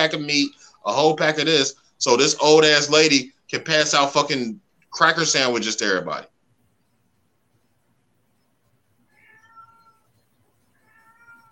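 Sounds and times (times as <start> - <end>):
speech: 0.0 - 6.3
cat meowing: 9.1 - 10.1, 10.7 - 11.4.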